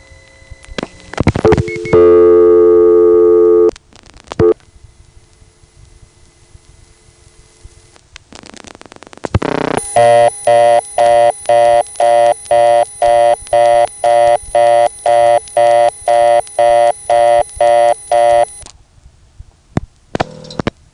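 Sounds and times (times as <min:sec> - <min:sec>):
telephone exchange buzzing tone blocking a misdialed number: 0:00.0 - 0:03.7, 0:04.4 - 0:04.6, 0:09.4 - 0:18.7
pulsing higher telephone exchange signal: 0:09.8 - 0:18.6.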